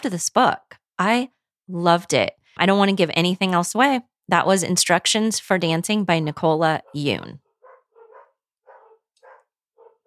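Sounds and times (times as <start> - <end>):
speech: 0.0 - 7.4
dogs barking: 6.8 - 10.0.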